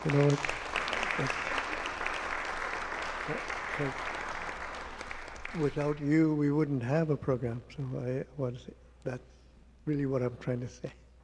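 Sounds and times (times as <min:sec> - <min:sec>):
speech: 0:00.0 - 0:00.6, 0:01.2 - 0:01.6, 0:03.3 - 0:04.1, 0:05.5 - 0:11.0
applause from students at an end-of-term language celebration: 0:00.0 - 0:06.6.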